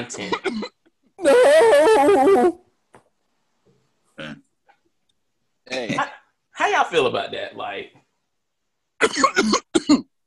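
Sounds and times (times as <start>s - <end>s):
speech: 0.0s - 2.5s, 6.7s - 8.0s, 9.1s - 9.6s
man coughing: 0.2s - 0.8s, 9.0s - 10.1s.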